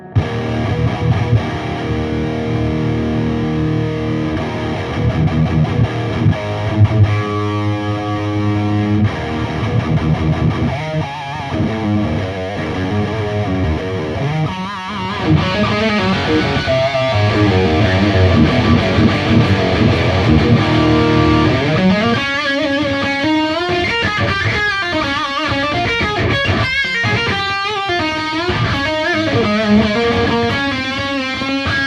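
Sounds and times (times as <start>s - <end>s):
electric guitar through TS9 overdrive pedal playing heavily distorted riffs: 0.0s - 31.8s.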